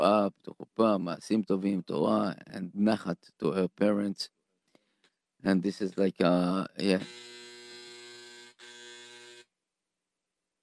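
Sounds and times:
speech: 0:00.0 - 0:04.4, 0:05.4 - 0:07.4
heater alarm buzzing loudly in a small studio on a freezing day: 0:07.0 - 0:09.4.

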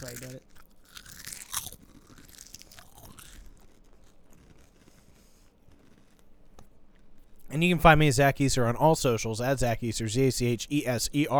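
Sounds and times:
speech: 0:00.0 - 0:00.6, 0:07.5 - 0:11.3
crunchy food being chewed against the microphone: 0:00.0 - 0:07.5.

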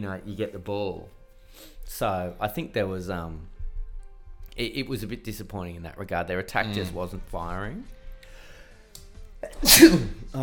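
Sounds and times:
speech: 0:00.0 - 0:03.5, 0:04.6 - 0:08.0, 0:09.4 - 0:10.4
short sharp sneeze: 0:09.4 - 0:10.3.

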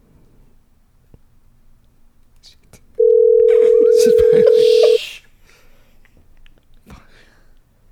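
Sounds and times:
quiet phone line hiss: 0:00.0 - 0:07.9
ringback tone on an outgoing phone call: 0:03.0 - 0:05.0.

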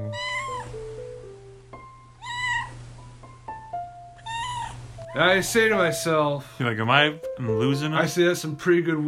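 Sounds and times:
cat meowing: 0:00.0 - 0:00.8, 0:02.2 - 0:02.9, 0:04.2 - 0:05.0
faint tonal background: 0:00.0 - 0:09.0
speech: 0:05.2 - 0:09.0.

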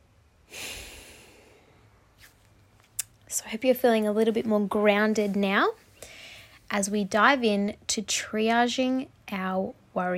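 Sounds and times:
deep breath exhaled slowly: 0:00.4 - 0:02.0
faint puff of breath: 0:00.5 - 0:01.9
speech: 0:03.3 - 0:05.8, 0:06.7 - 0:10.1.

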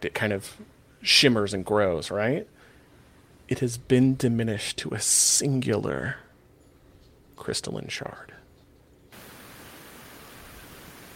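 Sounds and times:
speech: 0:00.0 - 0:02.6, 0:03.5 - 0:06.2, 0:07.4 - 0:08.3
harsh hissing broadband static: 0:09.2 - 0:11.1.

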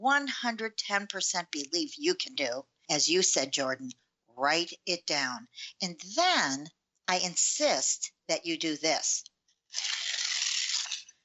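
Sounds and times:
speech: 0:00.0 - 0:10.0
single sheet of paper tearing: 0:09.8 - 0:11.1.

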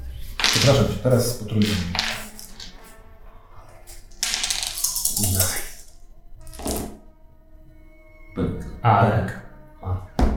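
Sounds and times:
dice rolling on a tabletop: 0:00.4 - 0:02.9, 0:03.9 - 0:07.0
speech: 0:00.6 - 0:02.1, 0:08.8 - 0:09.4.

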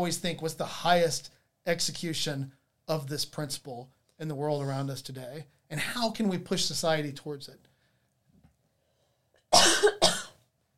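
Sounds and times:
speech: 0:00.0 - 0:07.7
woman coughing harshly: 0:09.6 - 0:10.4.

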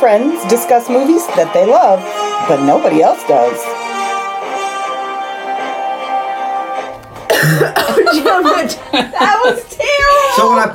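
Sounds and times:
speech: 0:00.0 - 0:03.8, 0:07.4 - 0:10.7
steady tonal music: 0:00.0 - 0:09.8
single sharp cough: 0:07.3 - 0:08.6
laughter: 0:07.8 - 0:10.1.

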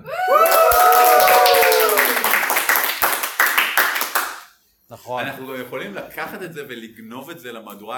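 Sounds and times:
cheers and whoops: 0:00.0 - 0:02.6
studio audience clapping: 0:00.3 - 0:04.6
speech: 0:05.1 - 0:07.9.

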